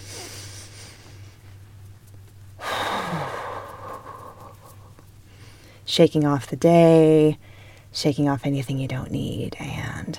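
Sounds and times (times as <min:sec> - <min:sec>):
slow deep breath in and long exhale: 0:00.0 - 0:01.6, 0:02.6 - 0:05.9, 0:07.4 - 0:07.9
low steady hum: 0:00.0 - 0:10.1
speech: 0:05.9 - 0:10.1.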